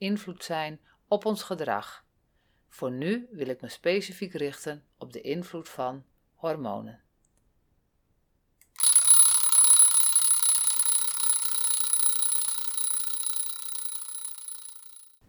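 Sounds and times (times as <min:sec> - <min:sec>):
speech: 0:00.0 - 0:02.0, 0:02.7 - 0:07.0
mechanical alarm clock bell ringing: 0:08.8 - 0:15.2.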